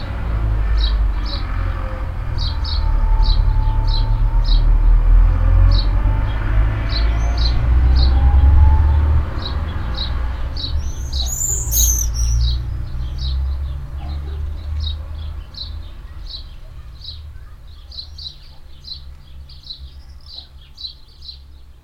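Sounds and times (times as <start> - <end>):
low rumble of a passing tractor: 0.0 - 17.5
swallows flying fast and chirping: 10.6 - 12.6.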